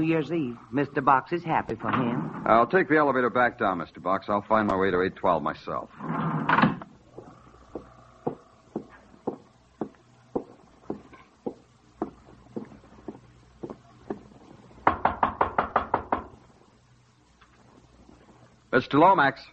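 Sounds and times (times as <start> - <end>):
speech: 0.0 - 6.4, 18.8 - 19.5
heavy pounding on a hotel room door: 14.8 - 16.4.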